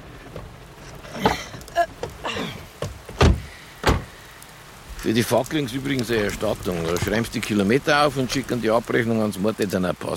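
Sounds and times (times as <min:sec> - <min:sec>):
soft rustling movement: 0:00.1 - 0:10.1
car door thumps and clunks as a passenger gets out of a car: 0:02.8 - 0:04.1
speech: 0:05.0 - 0:10.1.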